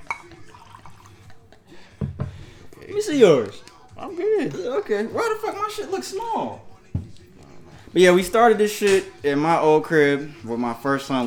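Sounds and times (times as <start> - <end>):
glassy clink: 0.0 - 1.2
liquor pouring into a shot glass: 0.0 - 4.6
speech: 3.0 - 6.7, 7.9 - 11.2.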